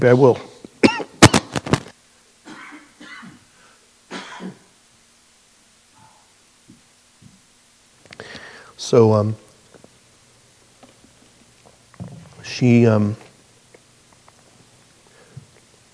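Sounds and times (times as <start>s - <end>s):
speech: 0.0s - 0.5s, 8.9s - 9.4s, 12.6s - 13.3s
person coughing sharply: 0.8s - 1.4s, 2.5s - 3.4s, 4.1s - 4.7s
soft throat-clearing rasps: 0.8s - 1.4s, 4.1s - 4.7s
faint breathy sounds: 8.1s - 8.8s.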